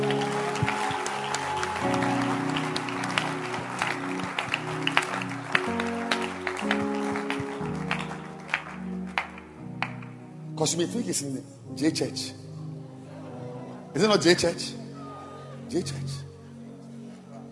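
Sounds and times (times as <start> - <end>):
audience hand clapping: 0.0 - 10.2
speech: 10.6 - 12.4, 14.0 - 14.8, 15.7 - 16.3.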